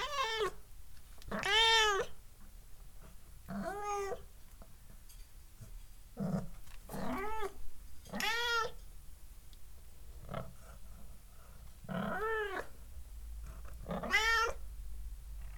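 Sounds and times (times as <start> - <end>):
domestic cat meowing close to the microphone: 0.0 - 0.6, 1.3 - 2.2, 3.6 - 4.2, 7.0 - 8.8, 13.8 - 14.6
steady low rumble in the background: 10.0 - 15.5.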